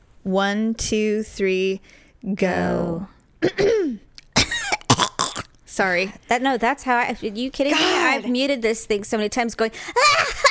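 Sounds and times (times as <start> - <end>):
speech: 0.2 - 4.0, 5.8 - 10.2
phlegmy coughing: 3.4 - 5.5.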